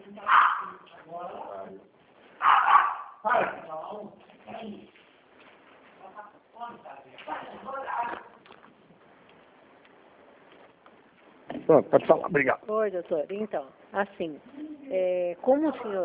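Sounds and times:
dog barking: 0.2s - 0.8s, 2.4s - 3.5s
speech: 11.7s - 16.0s.

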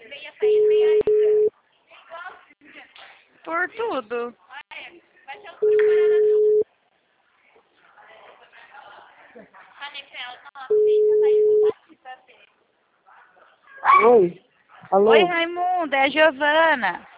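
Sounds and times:
telephone busy tones after a dropped call: 0.4s - 1.5s, 5.6s - 6.6s, 10.7s - 11.7s
speech: 3.6s - 4.4s, 14.0s - 17.1s.

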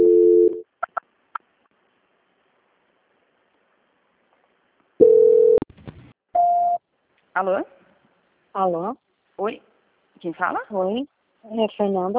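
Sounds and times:
telephone line tones during a call transfer: 0.0s - 0.6s, 5.0s - 5.6s
speech: 7.4s - 7.8s, 8.5s - 12.1s.

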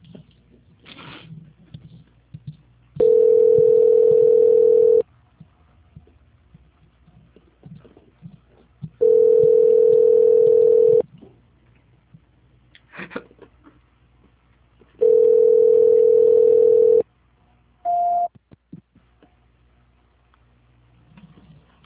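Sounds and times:
telephone transfer tone beeps while a call is put through: 3.0s - 5.0s, 9.0s - 11.0s, 15.0s - 17.0s, 17.9s - 18.3s.

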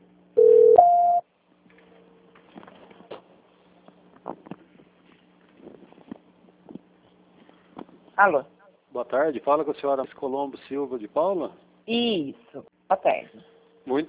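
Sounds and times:
telephone tone during a bank call transfer: 0.4s - 1.2s
speech: 8.2s - 14.0s.

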